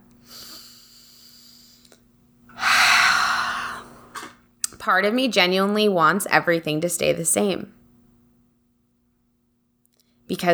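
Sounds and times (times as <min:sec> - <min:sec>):
deep breath in and out: 0:00.2 - 0:04.3
speech: 0:04.8 - 0:07.8, 0:10.4 - 0:10.5.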